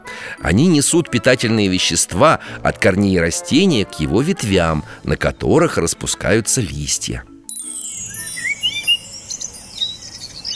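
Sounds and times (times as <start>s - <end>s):
speech: 0.3s - 7.3s
birds chirping and singing: 7.5s - 10.5s.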